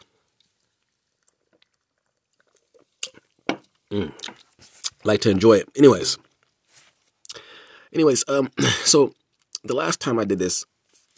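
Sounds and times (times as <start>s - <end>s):
slurping gulps of a drink: 0.3s - 5.0s
faint wet mouth clicks: 1.2s - 3.3s
speech: 3.9s - 4.3s, 5.0s - 6.2s, 7.9s - 11.1s
breathy exhale: 7.3s - 7.9s.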